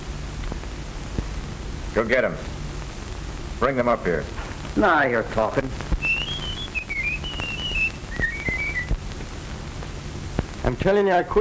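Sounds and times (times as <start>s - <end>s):
speech: 2.0s - 2.6s, 3.6s - 5.8s, 10.8s - 11.3s
man whistling a short melodic tune: 6.0s - 8.9s.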